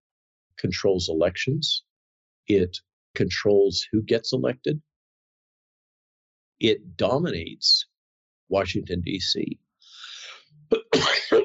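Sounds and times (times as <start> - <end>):
speech: 0.6 - 1.9, 2.5 - 4.9, 6.6 - 7.9, 8.5 - 9.6
breathy inhale: 9.8 - 10.4
person with a head cold coughing: 10.7 - 11.4.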